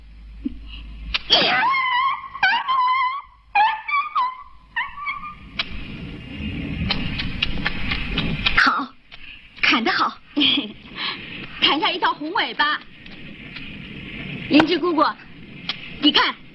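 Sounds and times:
dog yelping in pain: 0:01.4 - 0:05.5
steady rushing noise: 0:04.5 - 0:16.5
speech: 0:14.7 - 0:15.3.

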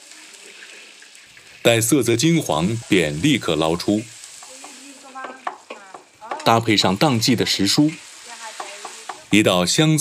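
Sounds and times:
fish slices coated in egg white and starch frying in hot oil: 0:00.0 - 0:09.9
speech: 0:01.6 - 0:04.2, 0:06.4 - 0:08.1, 0:09.3 - 0:09.9.

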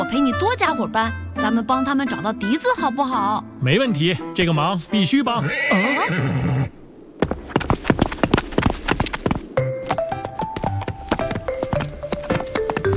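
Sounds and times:
speech: 0:00.1 - 0:06.5
ridden horse neighing: 0:05.4 - 0:06.8
ridden horse's hooves clip-clopping on a walk: 0:07.2 - 0:12.9.

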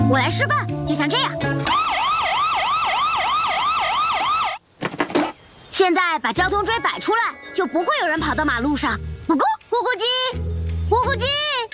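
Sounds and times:
speech: 0:00.1 - 0:02.0, 0:05.8 - 0:11.7
siren wailing: 0:01.6 - 0:04.6.

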